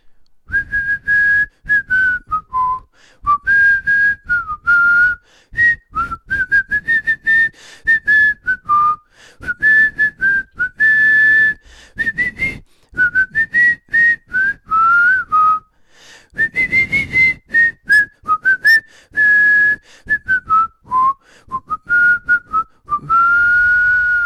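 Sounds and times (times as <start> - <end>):
person whistling a TV theme tune: 0.5 - 15.7, 16.4 - 24.2.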